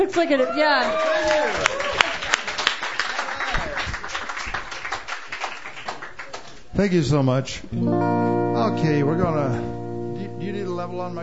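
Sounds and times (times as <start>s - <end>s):
speech: 0.0s - 2.0s, 6.8s - 9.8s, 10.5s - 11.2s
audience applause: 0.0s - 6.7s.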